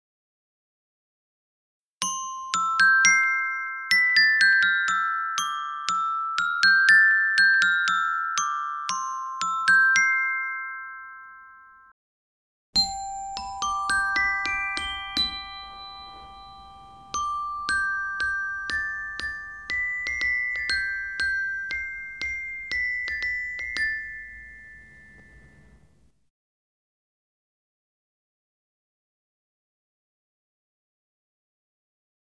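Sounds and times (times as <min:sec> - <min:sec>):
glockenspiel: 0:02.0 - 0:12.0, 0:12.8 - 0:26.1.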